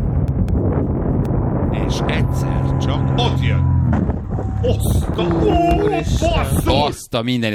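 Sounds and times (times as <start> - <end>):
wind rushing past a flying paraglider: 0.0 - 7.1
drawn-out tonal sung notes from a paraglider: 1.7 - 5.6
speech: 1.9 - 7.5.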